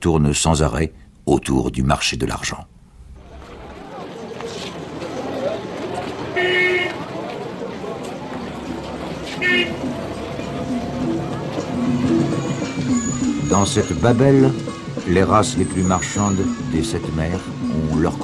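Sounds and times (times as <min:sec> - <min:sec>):
speech: 0:00.0 - 0:02.8, 0:13.5 - 0:18.2
dense steady roar of street traffic: 0:02.7 - 0:18.2
short car horn honks: 0:06.3 - 0:07.0, 0:09.4 - 0:09.9.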